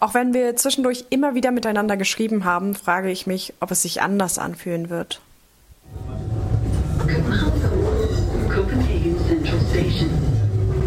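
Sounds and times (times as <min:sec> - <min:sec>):
speech: 0:00.0 - 0:05.3, 0:07.0 - 0:07.6
voices murmuring: 0:05.9 - 0:10.6
S-Bahn commuter train interior rumble in Copenhagen: 0:05.9 - 0:10.8.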